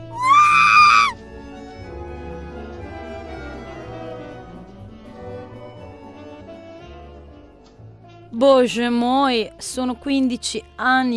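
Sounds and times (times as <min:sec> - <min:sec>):
woman's loud high-pitched scream: 0:00.0 - 0:01.2
speech: 0:08.3 - 0:11.1.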